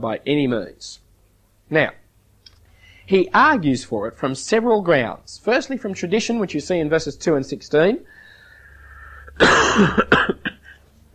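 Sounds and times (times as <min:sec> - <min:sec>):
speech: 0:00.0 - 0:01.0, 0:01.7 - 0:02.0, 0:03.1 - 0:08.2, 0:09.4 - 0:10.1
person coughing harshly: 0:09.2 - 0:10.8
throat clearing: 0:09.2 - 0:10.8.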